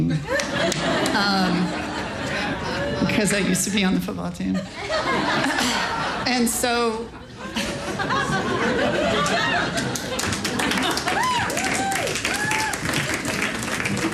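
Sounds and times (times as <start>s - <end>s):
laughter: 0.0s - 3.5s, 4.6s - 14.1s
speech: 3.0s - 7.2s
crowd applauding: 8.6s - 14.1s
crowd voices and cheers: 10.8s - 13.0s.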